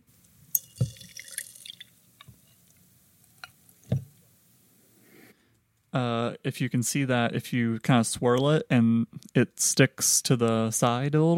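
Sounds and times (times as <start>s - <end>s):
oat milk dripping into a glass: 0.0s - 5.0s
soft glassy clinks of a glass: 0.5s - 2.6s
speech: 6.0s - 11.3s.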